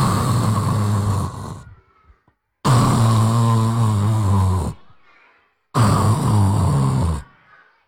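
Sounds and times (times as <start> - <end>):
voice imitating snoring of a sleeping mouse deer: 0.0 - 1.8, 2.7 - 4.9, 5.8 - 7.4.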